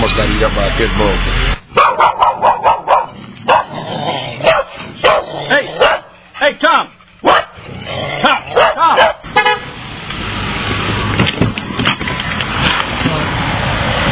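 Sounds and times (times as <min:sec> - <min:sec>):
speech: 0:00.0 - 0:02.5
traffic noise: 0:00.0 - 0:14.1
dogs barking: 0:01.7 - 0:06.2, 0:07.2 - 0:09.3
car horn: 0:09.3 - 0:09.8.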